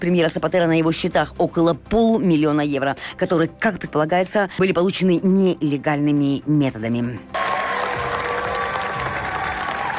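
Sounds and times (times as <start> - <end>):
speech: 0.0 - 7.4
large crowd applauding a standing ovation at a Cannes film premiere: 7.3 - 9.9.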